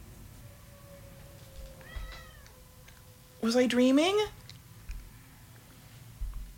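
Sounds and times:
steady low hum: 0:00.0 - 0:06.5
cat meowing: 0:00.5 - 0:03.4
speech: 0:03.4 - 0:04.4.

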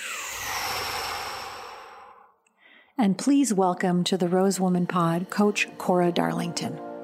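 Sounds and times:
big breath exhaled in one long airy whoosh: 0:00.0 - 0:03.0
speech: 0:03.0 - 0:06.9.

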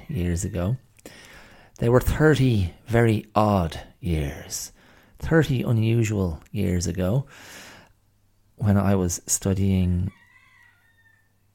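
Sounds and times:
speech: 0:00.1 - 0:07.7, 0:08.6 - 0:10.2
rooster on a fence crowing: 0:10.1 - 0:11.5.

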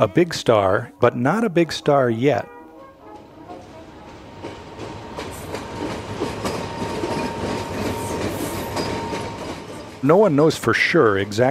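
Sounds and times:
speech: 0:00.0 - 0:02.5, 0:10.0 - 0:11.4
IRT elevated subway train cars clattering on rails: 0:02.7 - 0:11.4.

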